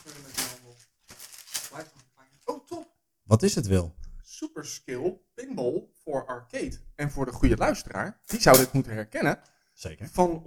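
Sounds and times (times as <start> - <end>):
perforated paper torn by hand off a package: 0.0 - 2.1
speech: 3.3 - 4.0, 4.6 - 10.4.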